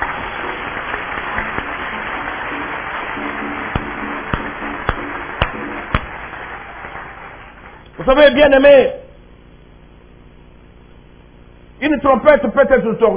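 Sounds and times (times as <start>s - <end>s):
sharp individual claps: 0.0s - 7.9s
church congregation applauding in praise during a service: 0.0s - 8.3s
speech: 8.1s - 9.0s, 12.0s - 13.1s.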